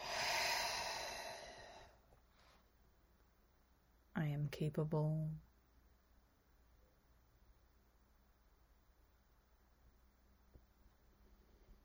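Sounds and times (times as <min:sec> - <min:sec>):
long breathy exhale during a guided breathing exercise: 0:00.0 - 0:02.0
speech: 0:04.2 - 0:05.5.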